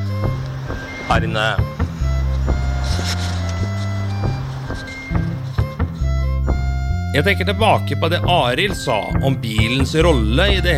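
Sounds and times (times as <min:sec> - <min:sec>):
clanks and knocks: 0:00.0 - 0:06.7
traffic rumble outside a shopping centre by the highway: 0:00.0 - 0:10.7
speech: 0:01.1 - 0:01.7, 0:07.2 - 0:10.7.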